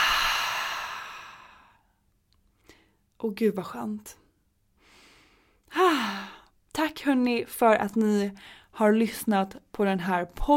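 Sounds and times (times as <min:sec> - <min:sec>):
long airy exhale during a guided relaxation: 0:00.0 - 0:01.8
speech: 0:03.2 - 0:04.2, 0:07.0 - 0:10.5.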